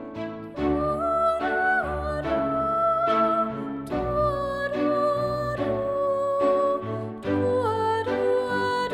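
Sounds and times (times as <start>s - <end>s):
polyphonic singing: 0.3s - 8.9s.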